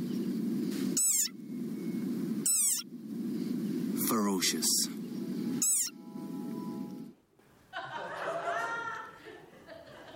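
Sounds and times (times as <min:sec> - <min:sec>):
steady low rumble: 0:00.0 - 0:08.8
angry frog squeaky war cries: 0:01.0 - 0:01.4, 0:02.4 - 0:02.9, 0:05.6 - 0:06.0
speech: 0:04.1 - 0:05.0
laughter: 0:07.7 - 0:10.1.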